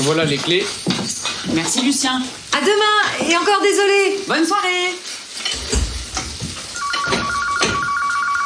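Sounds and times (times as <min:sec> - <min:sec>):
speech: 0:00.0 - 0:05.1
cooking noises in a home kitchen: 0:00.0 - 0:08.4
telephone ringing with an electronic ringtone: 0:06.8 - 0:08.4.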